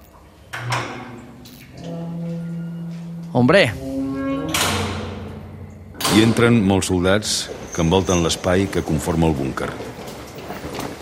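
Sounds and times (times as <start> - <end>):
heavy metal bunker door unlatched with clanking thuds: 0.5 - 8.4
speech: 3.4 - 3.8, 6.2 - 10.0.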